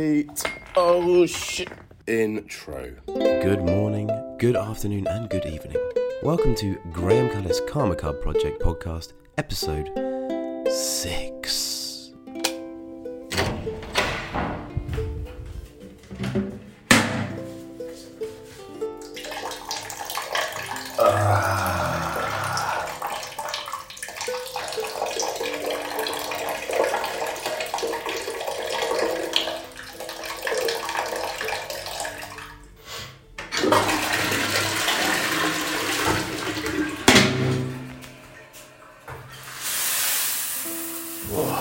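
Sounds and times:
speech: 0.0 - 10.0, 10.7 - 11.4
knocks and thunks: 13.3 - 17.4
water pouring from a shower head: 19.0 - 32.6, 33.6 - 41.5.

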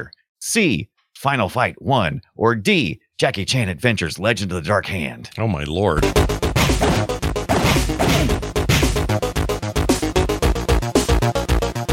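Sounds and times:
speech: 0.0 - 6.4
dense game soundtrack: 6.0 - 11.9
video game punching sound effects, thwacks and smashes: 6.1 - 9.1.

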